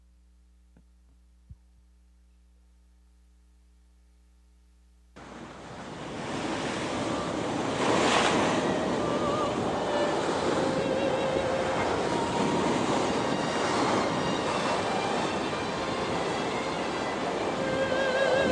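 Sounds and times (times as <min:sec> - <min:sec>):
low quiet hum: 0:00.0 - 0:05.2
ocean waves crashing against a lighthouse: 0:05.2 - 0:18.4.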